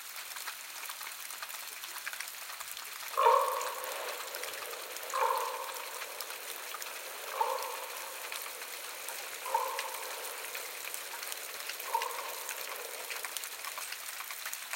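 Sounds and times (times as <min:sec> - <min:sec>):
crackling background hiss: 0:00.3 - 0:14.7
raven giving hoarse croaking calls: 0:03.0 - 0:14.5.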